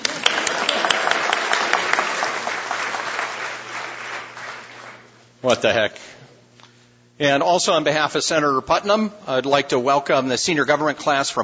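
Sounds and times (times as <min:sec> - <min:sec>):
group of people applauding for a visiting student: 0:00.0 - 0:05.2
speech: 0:05.4 - 0:06.2, 0:07.2 - 0:11.4.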